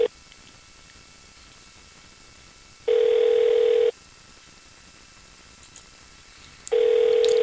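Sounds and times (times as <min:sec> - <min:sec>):
telephone ringback tone on an unanswered call: 0:02.9 - 0:03.9, 0:06.7 - 0:07.4.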